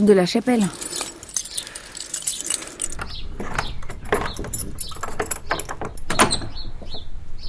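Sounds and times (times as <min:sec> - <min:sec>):
speech: 0:00.0 - 0:01.0
bunch of keys jangling: 0:00.6 - 0:06.6.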